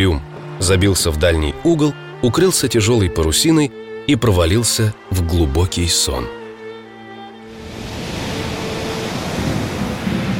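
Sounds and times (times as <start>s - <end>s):
speech: 0.0s - 6.4s
stormy sea waves: 6.4s - 10.3s.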